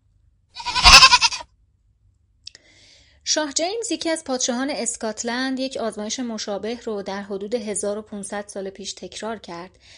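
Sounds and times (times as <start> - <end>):
goat bleating with a wavering quivering tone: 0.6 - 1.4
speech: 3.3 - 9.9.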